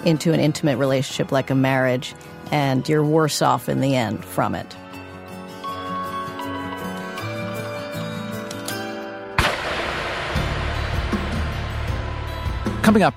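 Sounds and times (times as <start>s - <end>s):
speech: 0.0s - 4.8s, 12.9s - 13.1s
music: 0.0s - 13.1s
single sharp loud gunshot with rumbling tail: 9.4s - 12.1s.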